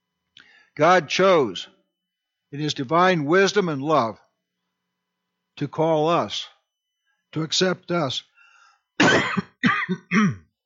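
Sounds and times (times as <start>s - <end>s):
speech: 0.8s - 1.8s, 2.5s - 4.2s, 5.6s - 6.5s, 7.3s - 8.3s, 9.0s - 10.4s
person clearing a dry throat: 9.0s - 10.6s.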